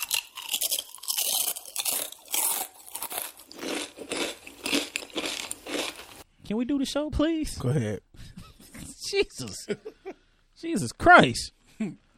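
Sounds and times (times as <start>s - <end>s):
bag of M&Ms crinkling: 0.0s - 6.2s
speech: 6.5s - 8.1s, 9.1s - 10.0s, 10.6s - 12.0s.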